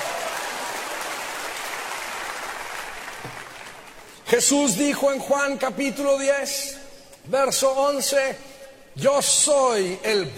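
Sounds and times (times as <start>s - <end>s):
audience applauding: 0.0s - 4.2s
speech: 4.3s - 10.3s.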